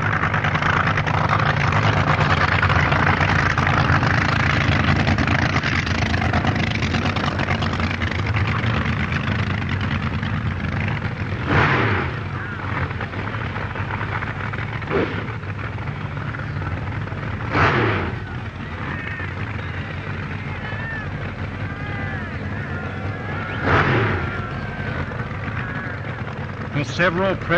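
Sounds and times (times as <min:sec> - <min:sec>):
supercharged dragster engines snarling at a drag-racing start line in England: 0:00.0 - 0:27.5
speech: 0:27.0 - 0:27.5.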